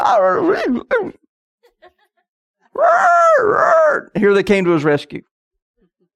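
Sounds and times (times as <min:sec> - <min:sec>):
person imitating a jungle yell with a warbling cry: 0:00.0 - 0:01.2, 0:02.8 - 0:04.2
speech: 0:00.0 - 0:01.2, 0:02.8 - 0:05.3.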